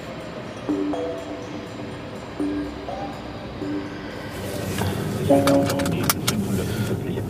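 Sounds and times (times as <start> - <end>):
short electronic chimes beeping inside a car: 0.0 - 4.6, 5.2 - 6.0
car engine and road rumble driving over a heavy stone bridge across the Nahe river: 0.0 - 7.2
clunks as people get into a car: 4.7 - 7.0.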